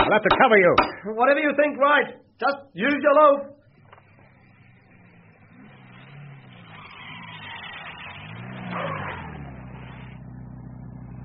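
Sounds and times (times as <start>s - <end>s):
speech: 0.1s - 3.6s
staff car engine revving as it drives up: 3.6s - 11.2s.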